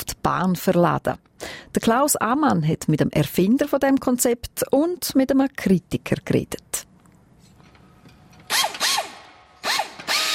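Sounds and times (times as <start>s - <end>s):
speech: 0.2s - 6.6s
power drill or screwdriver whirring in a car workshop: 8.5s - 10.3s.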